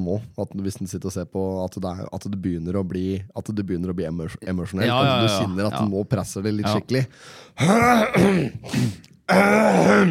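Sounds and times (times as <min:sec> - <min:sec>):
speech: 0:00.0 - 0:10.0
person clearing throat in groan-like bursts: 0:07.6 - 0:10.0.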